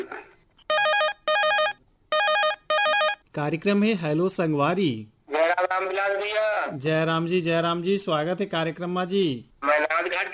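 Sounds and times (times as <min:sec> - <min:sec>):
telephone ringing on an outgoing call from a radio programme: 0:00.6 - 0:03.2
speech: 0:03.4 - 0:09.5.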